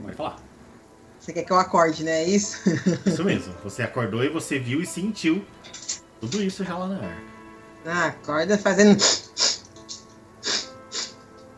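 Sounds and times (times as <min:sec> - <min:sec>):
speech: 0:00.1 - 0:00.5, 0:01.2 - 0:09.2
laughter: 0:02.5 - 0:03.4
sharp nasal sniffs of air: 0:09.0 - 0:09.7, 0:10.4 - 0:11.3.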